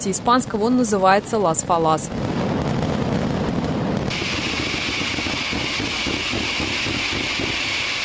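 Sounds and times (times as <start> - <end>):
speech: 0.0 - 2.5
fireworks bangs and booms: 0.0 - 8.0
high hissing whistle of fireworks: 4.1 - 8.0.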